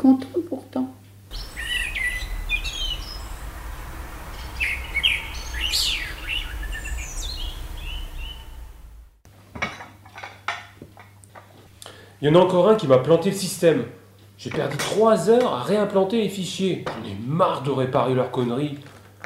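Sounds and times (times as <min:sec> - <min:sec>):
low steady rumble: 0:01.2 - 0:09.3
several birds chirping and singing: 0:01.3 - 0:09.1
speech: 0:12.2 - 0:18.9.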